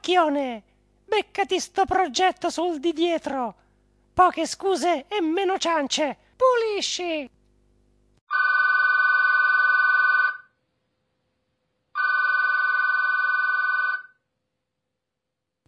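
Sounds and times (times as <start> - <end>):
speech: 0.1 - 3.6, 4.2 - 7.4
mobile phone ringing with an electronic trill: 8.3 - 10.5, 12.0 - 14.2.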